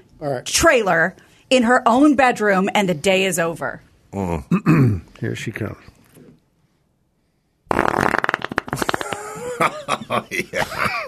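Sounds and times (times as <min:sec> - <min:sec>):
speech: 0:00.2 - 0:06.0, 0:09.6 - 0:11.0
loud sputtering squeaky fart: 0:07.7 - 0:09.4
laughter: 0:08.8 - 0:11.0.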